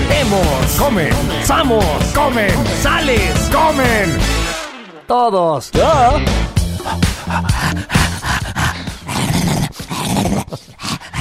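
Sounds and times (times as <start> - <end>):
speech: 0.1 - 4.5, 5.1 - 8.0
dog growling and whimpering: 6.8 - 11.1.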